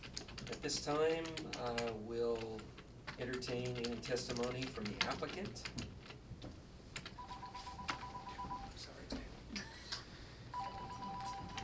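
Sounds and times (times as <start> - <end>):
speech: 0.6 - 5.8
mobile phone electronic tones: 7.2 - 8.8, 10.5 - 11.6.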